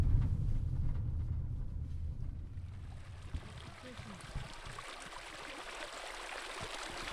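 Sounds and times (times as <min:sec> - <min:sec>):
low rumble: 0:00.0 - 0:03.6
underground-fed spring water flowing in central Nevada: 0:02.9 - 0:07.1.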